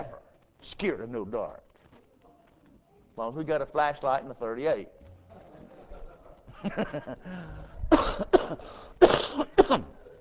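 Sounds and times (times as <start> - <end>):
speech: 0.0 - 1.7, 3.2 - 5.0, 6.6 - 10.0
laughter: 5.3 - 8.8
person coughing and choking: 7.9 - 10.0.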